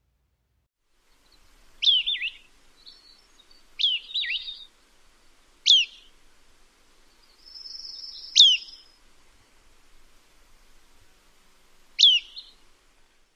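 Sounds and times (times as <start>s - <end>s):
Hammond's flycatcher pirpwit call: 1.8s - 4.8s, 5.6s - 6.2s, 7.1s - 9.0s, 11.7s - 12.6s.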